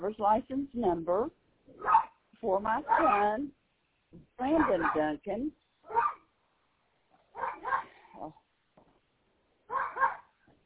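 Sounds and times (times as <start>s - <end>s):
speech: 0.0s - 6.2s, 7.4s - 8.4s
dog barking and yowling: 1.8s - 2.2s, 2.8s - 3.4s, 4.5s - 5.0s, 5.9s - 6.3s, 7.3s - 8.1s, 9.7s - 10.4s.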